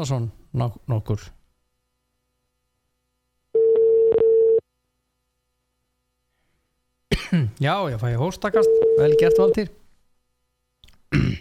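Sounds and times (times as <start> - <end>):
speech: 0.0 - 1.4, 7.3 - 9.8
telephone dial tone while placing a call: 3.6 - 4.6.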